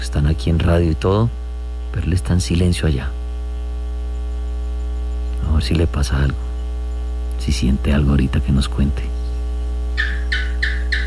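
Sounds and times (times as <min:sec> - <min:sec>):
constant low hum: 0:00.0 - 0:11.0
speech: 0:00.1 - 0:03.2, 0:05.6 - 0:06.4, 0:07.4 - 0:09.2
bird chirping: 0:04.1 - 0:11.0.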